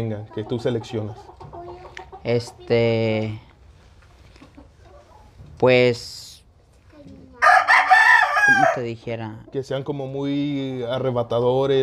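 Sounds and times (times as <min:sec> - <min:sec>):
speech: 0:00.0 - 0:01.5, 0:02.2 - 0:03.5, 0:05.6 - 0:06.3, 0:08.5 - 0:11.8
rooster crowing: 0:07.4 - 0:08.9.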